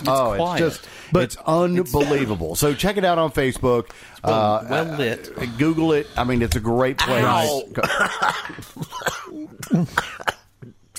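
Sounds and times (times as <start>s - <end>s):
speech: 0.0s - 10.4s
throaty groaning vocal sounds: 4.3s - 7.7s.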